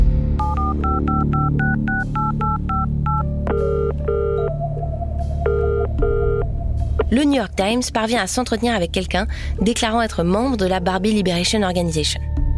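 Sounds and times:
telephone keypad beeps: 0:00.4 - 0:04.5
longer electronic tones: 0:00.4 - 0:06.5
low droning background: 0:02.8 - 0:11.4
speech: 0:07.2 - 0:12.2.

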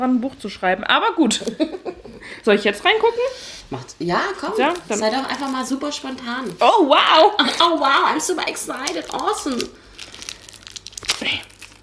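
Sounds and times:
speech: 0:00.0 - 0:09.9
laughter: 0:01.2 - 0:03.3
plastic film wrapping crinkling while unwrapping a gift book: 0:03.6 - 0:11.8.

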